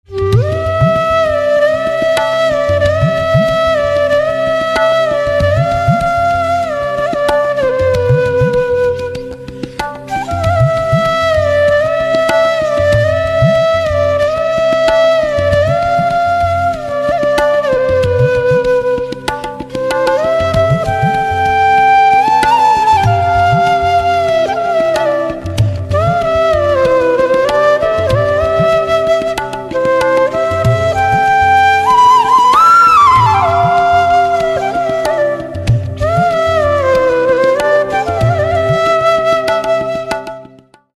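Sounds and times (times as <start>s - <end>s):
slow flute: 0.0s - 40.9s.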